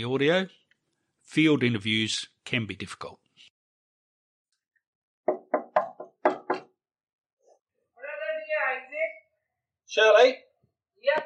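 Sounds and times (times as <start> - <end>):
speech: 0.0 - 0.6, 1.3 - 3.2, 9.9 - 11.2
firm knocking on a front door: 5.2 - 6.8.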